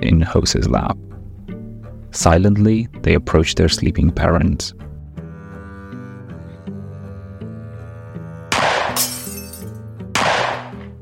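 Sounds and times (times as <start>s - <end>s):
speech: 0.2s - 1.1s, 2.1s - 4.8s
glass of French doors shattering when struck by a fired pellet: 8.8s - 9.8s.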